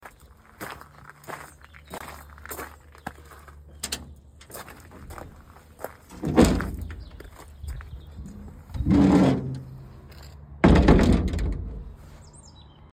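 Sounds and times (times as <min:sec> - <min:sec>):
gate noises: 0:03.7 - 0:12.1.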